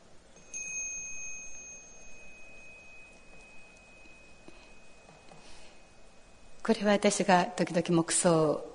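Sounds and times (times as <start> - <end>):
hiss: 0.0 - 8.7
small meditation gong struck, high ringing tone: 0.4 - 6.6
speech: 6.7 - 8.7.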